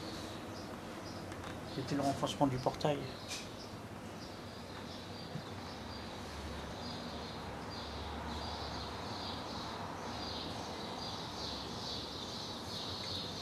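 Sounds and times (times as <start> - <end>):
outdoor chorus of birds singing and twittering: 0.0 - 13.4
speech: 1.8 - 3.5.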